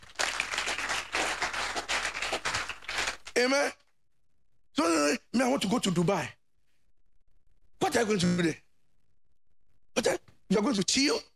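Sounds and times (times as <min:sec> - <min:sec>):
audience applause: 0:00.0 - 0:03.3
speech: 0:03.4 - 0:03.8, 0:04.8 - 0:06.4, 0:07.9 - 0:08.6, 0:10.0 - 0:11.3.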